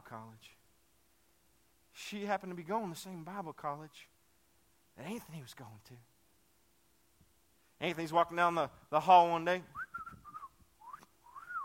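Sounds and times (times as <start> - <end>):
speech: 0.1 - 0.6, 2.0 - 4.1, 5.0 - 6.1, 7.8 - 10.1
person whistling gliding notes: 9.7 - 11.6.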